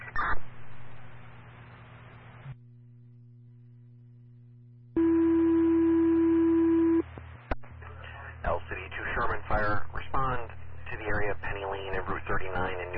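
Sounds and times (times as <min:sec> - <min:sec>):
radio channel crackling with static: 0:00.0 - 0:02.6, 0:05.0 - 0:12.9
fire dispatch paging tone for a mutual aid request: 0:05.0 - 0:07.0.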